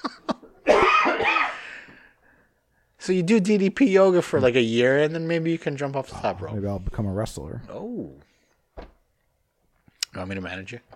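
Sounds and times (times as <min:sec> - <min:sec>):
person coughing raspy and strained: 0:00.6 - 0:01.7
speech: 0:03.1 - 0:08.9, 0:10.2 - 0:10.9.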